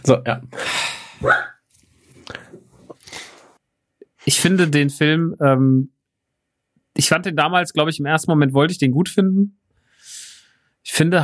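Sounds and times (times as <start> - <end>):
speech: 0.0 - 1.5, 4.2 - 6.0, 7.0 - 9.6, 10.8 - 11.2
dog barking: 1.2 - 1.6.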